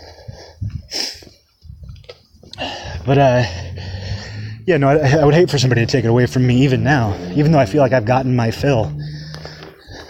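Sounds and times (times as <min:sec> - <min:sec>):
heavy labored breathing while walking uphill: 0:00.0 - 0:01.5, 0:02.4 - 0:04.7, 0:08.6 - 0:10.0
speech: 0:02.6 - 0:03.7, 0:04.7 - 0:09.0.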